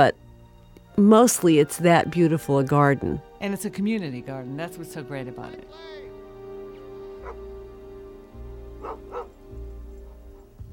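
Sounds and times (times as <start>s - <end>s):
speech: 0.0s - 0.2s, 1.0s - 6.1s
music: 0.0s - 10.7s
dog barking: 7.2s - 7.5s, 8.8s - 9.4s.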